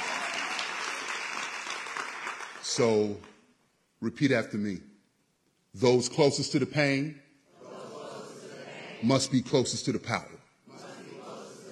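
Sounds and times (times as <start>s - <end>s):
audience applause at a speech in Chicago: 0.0s - 2.8s
speech: 2.7s - 3.3s, 4.0s - 4.9s, 5.8s - 7.2s, 9.0s - 10.4s.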